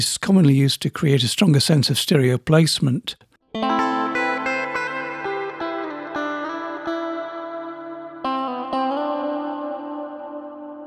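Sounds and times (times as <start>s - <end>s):
speech: 0.0s - 3.8s
slightly distorted guitar-like instrument chords with mono reverb: 3.6s - 10.8s.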